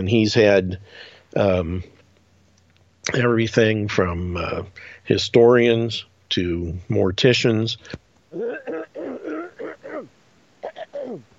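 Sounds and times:
speech: 0.0s - 2.0s, 3.0s - 8.7s
person clearing throat: 8.3s - 11.3s.

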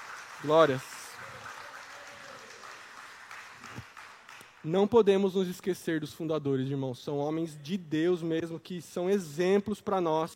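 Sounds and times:
crowd clapping in a large room: 0.0s - 5.3s
speech: 0.4s - 0.9s, 4.6s - 10.3s.

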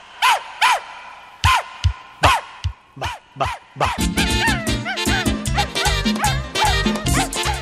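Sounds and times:
short yelping dog barks woven into the beat: 2.2s - 7.6s
speech: 3.0s - 4.4s
loud upbeat novelty dance song: 4.0s - 7.6s
pounding bass line: 4.0s - 7.6s.

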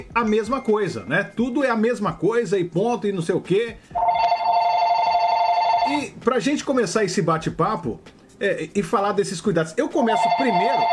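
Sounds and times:
speech: 0.0s - 4.1s, 5.9s - 10.9s
mobile phone ringing with a steady electronic tone: 4.0s - 6.2s, 10.0s - 10.9s.

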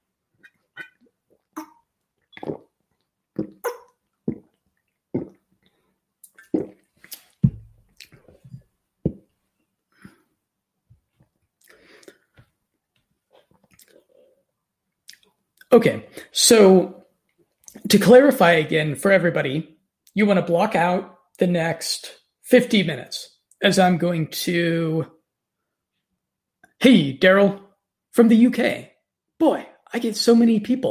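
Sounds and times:
person drinking water with wet gulps and mouth clicks: 0.4s - 9.2s, 11.6s - 12.5s, 13.4s - 14.4s
speech: 15.7s - 17.0s, 17.9s - 25.2s, 26.8s - 27.6s, 28.2s - 30.9s.

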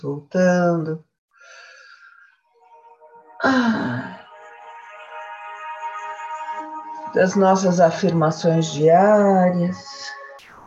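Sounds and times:
speech: 0.0s - 1.1s, 3.4s - 4.2s, 7.1s - 10.2s
long deep breath with a wheezy tone and a voiced sigh: 1.3s - 2.4s.

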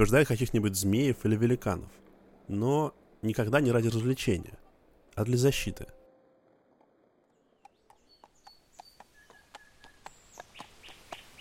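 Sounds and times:
speech: 0.0s - 4.6s, 5.2s - 6.0s
birds whistling: 7.4s - 11.3s.

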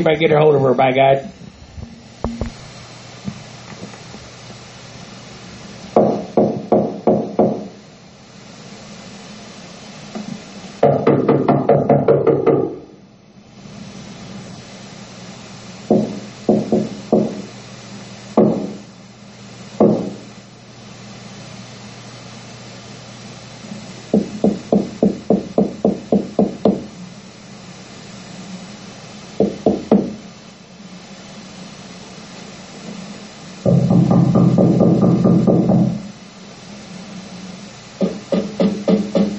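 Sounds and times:
speech: 0.0s - 1.4s
man knocking on a door: 6.0s - 7.7s, 10.8s - 12.8s, 15.9s - 17.5s, 18.4s - 18.8s, 19.8s - 20.2s, 24.1s - 26.9s, 29.4s - 30.2s, 33.6s - 36.1s, 38.0s - 39.3s.

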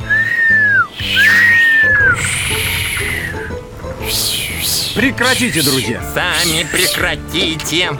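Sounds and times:
people whistling to summon wind: 0.0s - 7.1s
steady low humming background: 0.8s - 7.1s
speech: 5.0s - 7.9s.

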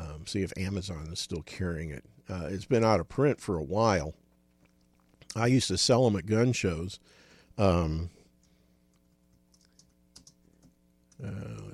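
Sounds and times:
short voiced hum: 0.0s - 11.7s
speech: 0.3s - 4.2s, 5.3s - 8.2s, 11.2s - 11.7s
typing on a computer keyboard: 9.5s - 10.8s.

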